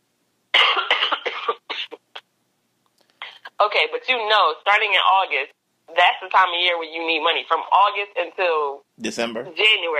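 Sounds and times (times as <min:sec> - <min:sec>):
person coughing: 0:00.6 - 0:02.2
speech: 0:03.6 - 0:09.9.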